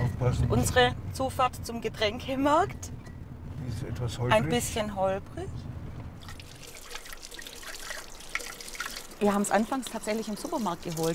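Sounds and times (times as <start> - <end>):
speech: 0.2 - 3.0, 3.6 - 5.7, 9.2 - 11.1
water trickling from a forest spring: 6.2 - 11.1.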